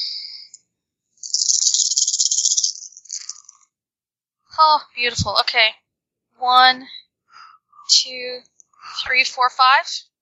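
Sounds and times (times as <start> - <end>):
dice from a doubled dice pool rattling and tumbling: 1.2 - 3.6
speech: 4.6 - 5.8, 6.4 - 7.0, 7.9 - 10.1.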